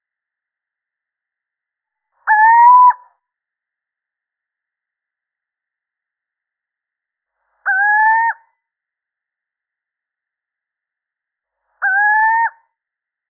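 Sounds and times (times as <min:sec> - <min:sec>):
male little owl hooting: 0:02.2 - 0:03.1, 0:07.7 - 0:08.4, 0:11.8 - 0:12.6.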